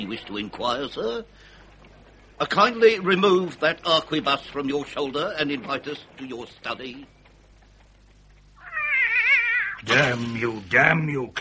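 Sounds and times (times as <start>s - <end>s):
speech: 0.0s - 1.6s, 2.4s - 7.2s, 9.8s - 11.3s
cat yowling: 8.6s - 9.8s.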